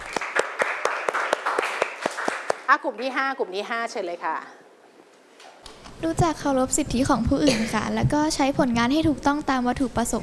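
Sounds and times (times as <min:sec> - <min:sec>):
classroom applause for a presenting group: 0:00.0 - 0:02.7
speech: 0:02.7 - 0:04.6, 0:06.0 - 0:10.2.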